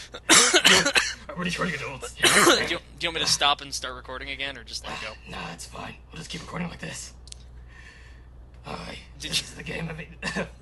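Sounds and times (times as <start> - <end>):
loud harsh cough: 0.2 - 1.2, 2.2 - 2.8
speech: 1.4 - 7.2, 8.6 - 10.6.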